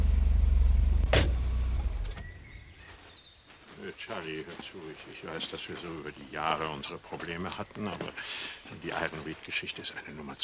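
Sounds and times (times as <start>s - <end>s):
approaching car with a humming engine: 0.0s - 2.6s
speech: 3.9s - 10.4s.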